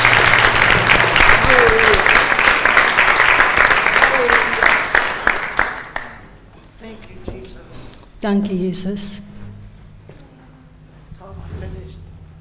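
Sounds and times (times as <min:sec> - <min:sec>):
congregation applauding: 0:00.0 - 0:06.4
speech: 0:08.2 - 0:09.2.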